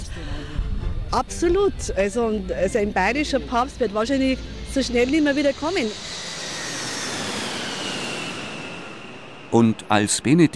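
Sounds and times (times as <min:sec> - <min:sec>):
jet airplane landing at an airport engine roar: 0:00.0 - 0:10.5
speech: 0:01.1 - 0:06.3, 0:09.5 - 0:10.5
faint high whine of jet airplane: 0:02.3 - 0:10.5.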